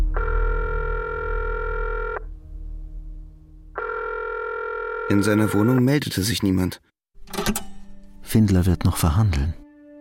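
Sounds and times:
steady low telephone line tone in a street phone booth: 0:00.1 - 0:02.4, 0:03.7 - 0:05.8
speech: 0:05.1 - 0:07.7, 0:08.3 - 0:09.6.

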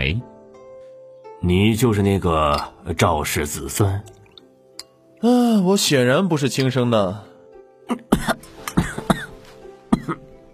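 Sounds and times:
speech: 0:01.4 - 0:04.2, 0:05.2 - 0:07.3, 0:07.9 - 0:08.3
person coughing after choking on porridge: 0:07.9 - 0:10.3.

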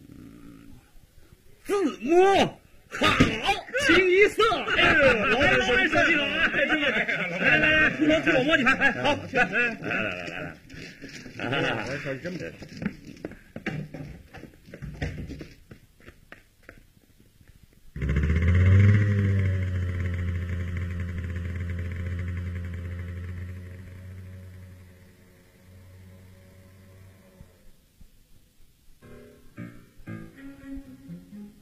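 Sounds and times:
speech: 0:01.7 - 0:10.6, 0:11.4 - 0:12.9
laughter: 0:02.9 - 0:12.4
motorcycle engine drone as radio drama effect: 0:18.0 - 0:27.2.

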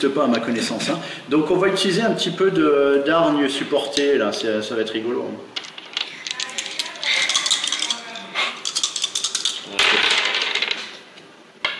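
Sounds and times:
speech: 0:00.0 - 0:05.6
dice rattling and clattering during a tabletop role-playing game: 0:05.6 - 0:11.0.

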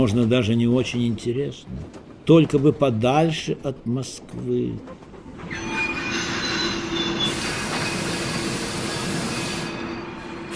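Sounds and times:
speech: 0:00.0 - 0:05.6
train brakes screeching as a rail car jolts and slows: 0:05.4 - 0:10.5.

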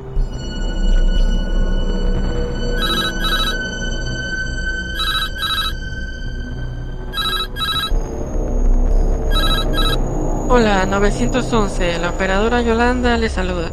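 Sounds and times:
low rumble: 0:00.0 - 0:13.7
telephone ringing on an emergency call line: 0:02.8 - 0:03.6, 0:05.0 - 0:05.8, 0:07.2 - 0:08.0, 0:09.3 - 0:10.0
speech: 0:10.6 - 0:13.7.

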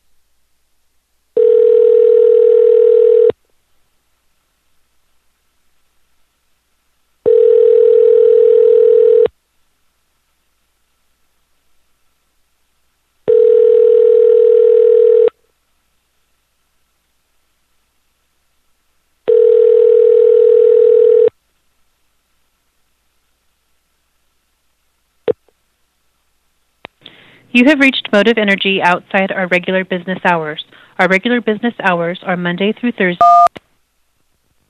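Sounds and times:
telephone ringback tone while calling a toll-free number: 0:01.4 - 0:03.3, 0:07.3 - 0:09.3, 0:13.3 - 0:15.3, 0:19.3 - 0:21.3, 0:33.2 - 0:33.5
speech: 0:27.6 - 0:33.6.

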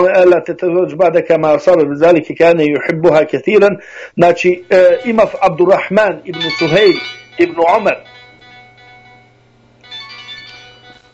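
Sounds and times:
speech: 0:00.0 - 0:08.1
phone ringtone for an incoming call: 0:04.6 - 0:11.1.

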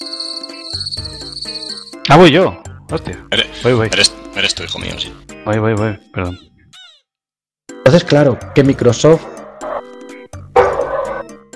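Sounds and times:
speech: 0:02.1 - 0:06.5, 0:07.9 - 0:09.4
dog barking: 0:09.3 - 0:09.9, 0:10.6 - 0:11.3.

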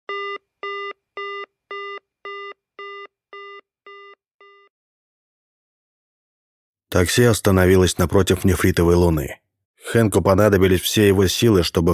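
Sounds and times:
telephone busy tone beeping in a handset receiver: 0:00.1 - 0:04.7
speech: 0:06.9 - 0:11.9.

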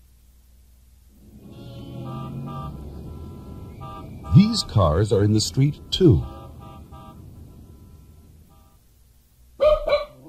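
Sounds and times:
faint tonal hums: 0:01.1 - 0:08.9
speech: 0:04.4 - 0:06.4
small dog barking: 0:09.6 - 0:10.2.

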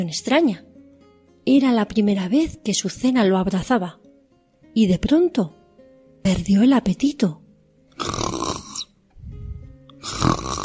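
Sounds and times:
speech: 0:00.0 - 0:00.7, 0:01.5 - 0:04.0, 0:04.8 - 0:05.6, 0:06.2 - 0:07.4, 0:08.0 - 0:08.2
little sheep snoring: 0:08.0 - 0:08.9, 0:10.0 - 0:10.6.

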